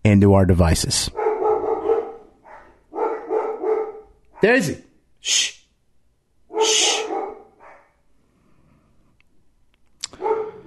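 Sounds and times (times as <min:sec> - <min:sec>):
speech: 0:00.1 - 0:01.2, 0:04.4 - 0:05.6, 0:06.6 - 0:07.2
big yellow female Labrador barking: 0:01.1 - 0:04.7, 0:06.5 - 0:08.0, 0:10.1 - 0:10.6.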